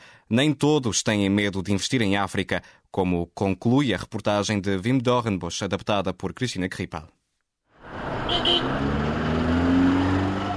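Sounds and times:
speech: 0:00.3 - 0:07.2
heavy rush-hour city road traffic jam at a roundabout: 0:07.8 - 0:10.5
brief high engine squeal: 0:07.9 - 0:09.6.

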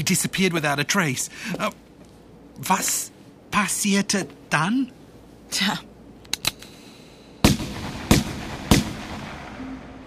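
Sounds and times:
speech: 0:00.0 - 0:01.9, 0:02.6 - 0:05.9
gunshot-like bangs: 0:07.4 - 0:09.6.

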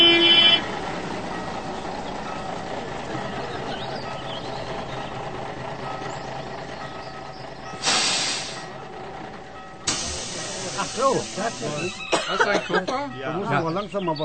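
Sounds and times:
bus engine drone heard inside the bus: 0:00.0 - 0:14.2
bus air brakes hissing: 0:07.7 - 0:08.8, 0:09.8 - 0:12.1
laughter: 0:10.4 - 0:13.2
speech: 0:11.1 - 0:14.2.

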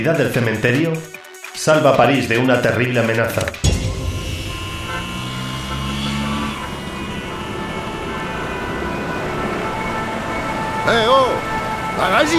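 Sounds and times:
speech: 0:00.0 - 0:03.7, 0:10.9 - 0:12.3
car horns honking in a street traffic jam in Paris: 0:03.2 - 0:12.3
idling traffic rumble in a street traffic jam in Paris: 0:03.4 - 0:12.3.

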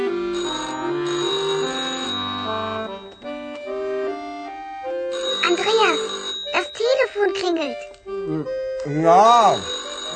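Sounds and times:
melodic electronic telephone ringtone: 0:00.1 - 0:07.1, 0:09.1 - 0:10.1
child's voice: 0:05.4 - 0:07.9
speech: 0:09.1 - 0:09.7.

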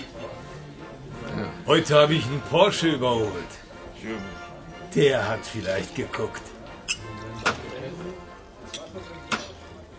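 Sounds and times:
low murmur of men's voices in a village bar: 0:00.0 - 0:09.9
speech: 0:01.7 - 0:07.0
glasses and dishes clinking and knocking in a village bar: 0:08.6 - 0:09.6.

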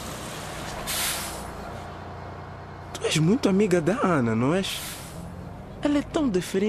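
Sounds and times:
low bus engine rumble: 0:00.0 - 0:06.6
bus air brakes hissing: 0:00.3 - 0:01.6, 0:04.7 - 0:05.3
speech: 0:03.0 - 0:05.0, 0:05.8 - 0:06.6.

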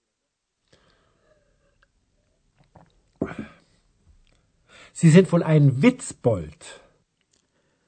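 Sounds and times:
breath: 0:00.7 - 0:01.8, 0:04.6 - 0:05.0, 0:07.4 - 0:07.8
person drinking and gulping beer: 0:02.6 - 0:03.6
speech: 0:05.0 - 0:06.8.

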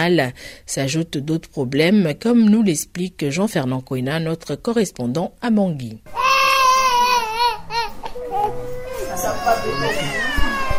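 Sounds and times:
speech: 0:00.0 - 0:06.2
baby crying loudly in a paediatric hospital emergency centre: 0:06.1 - 0:10.7.

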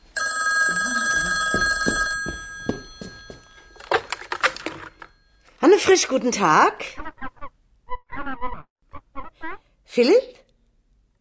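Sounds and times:
telephone ringing in a hallway: 0:00.0 - 0:05.5
telephone handset clicks and clatters: 0:03.7 - 0:05.2
speech: 0:05.8 - 0:07.0, 0:10.0 - 0:10.4.

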